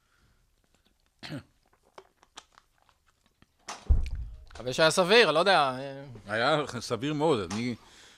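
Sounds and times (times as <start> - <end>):
person coughing: 1.2 - 1.5
coughing or throat clearing with a low rumble: 1.2 - 1.6
speech: 1.3 - 1.5, 4.6 - 8.0.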